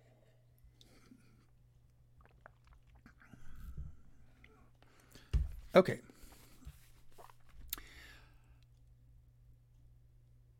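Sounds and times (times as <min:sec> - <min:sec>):
faint steady hum: 0:00.0 - 0:10.5
person sipping water with lime juice: 0:00.7 - 0:05.3, 0:06.2 - 0:08.7
gulping: 0:02.2 - 0:04.7
speech: 0:05.8 - 0:06.1.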